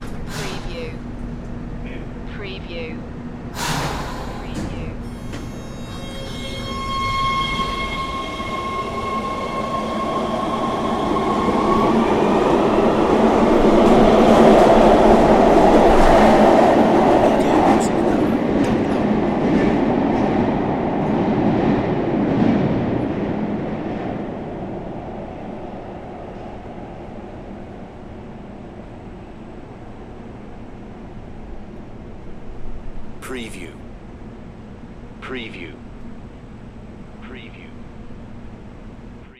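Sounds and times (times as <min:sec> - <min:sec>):
subway train accelerating away: 0:03.3 - 0:31.4
subway train air brake release: 0:03.6 - 0:04.4.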